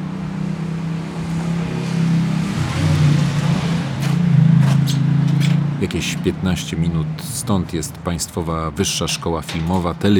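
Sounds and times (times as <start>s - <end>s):
traffic noise on Nowa Street in Łódź Poland: 0.0s - 10.1s
vehicle engine rumble on Nowa Street in Łódź Poland: 0.0s - 10.1s
speech: 5.8s - 10.1s.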